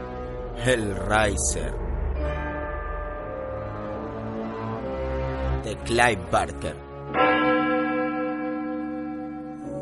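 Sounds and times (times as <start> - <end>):
speech: 0.6 - 1.9, 5.7 - 7.2
large bell tolling: 0.7 - 5.5, 7.1 - 9.8.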